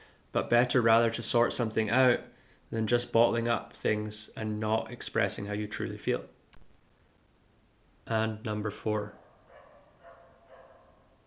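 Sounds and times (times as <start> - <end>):
speech: 0.4 - 6.4, 8.1 - 9.2
dog barking: 9.1 - 11.2.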